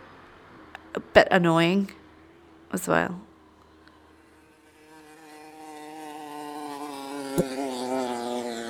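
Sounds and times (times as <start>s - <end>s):
speech: 1.0s - 2.0s, 2.7s - 3.3s, 7.4s - 7.6s
insect-like buzzing: 4.2s - 8.6s.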